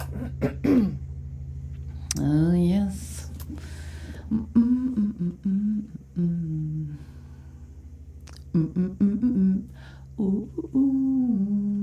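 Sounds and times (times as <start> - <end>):
person coughing: 0.0 - 1.0
low steady hum: 0.0 - 11.8.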